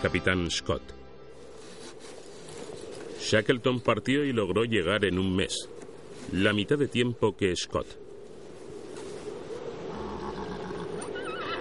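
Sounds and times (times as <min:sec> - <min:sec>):
speech: 0:00.0 - 0:01.0, 0:03.2 - 0:05.7, 0:06.3 - 0:08.0
horse whinnying: 0:09.9 - 0:11.6.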